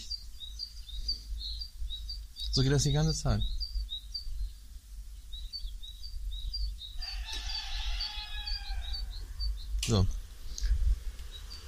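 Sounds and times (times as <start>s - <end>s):
small birds chirping: 0.0s - 11.6s
speech: 2.6s - 3.6s, 9.9s - 10.2s
rooster crowing: 7.0s - 9.5s.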